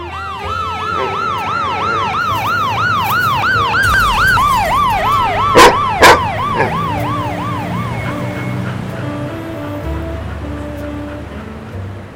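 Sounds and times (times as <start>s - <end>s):
approaching police car siren yelping: 0.0s - 11.5s
passing traffic rumble: 0.0s - 12.1s
sharp thumps: 3.2s - 8.0s.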